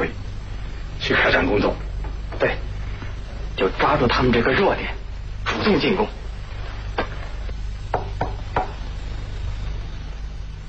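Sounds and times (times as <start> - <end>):
low steady hum: 0.0 - 10.6
speech: 1.3 - 2.7, 3.6 - 5.0, 5.6 - 6.2
knocking on a door: 7.9 - 8.8.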